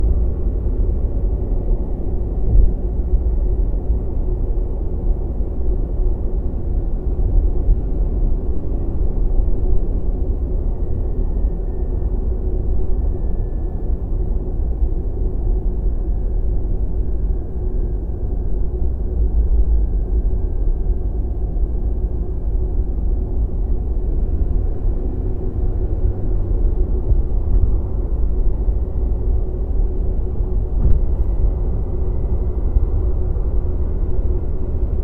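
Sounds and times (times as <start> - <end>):
freeway tunnel traffic: 0.0 - 35.0.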